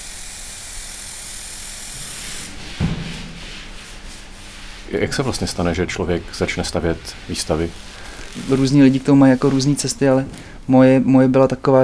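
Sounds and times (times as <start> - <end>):
spray adhesive being sprayed onto a wooden panel: 0.0 - 11.8
handmade paper being smoothed of air bubbles: 2.0 - 11.7
soft thump of handmade paper laid on a panel: 2.7 - 3.5, 5.0 - 10.8
speech: 4.9 - 11.8.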